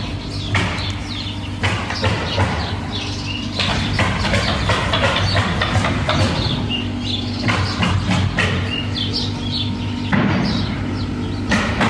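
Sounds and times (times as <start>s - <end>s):
heavy machine engine rumbling during house demolition: 0.0s - 11.8s.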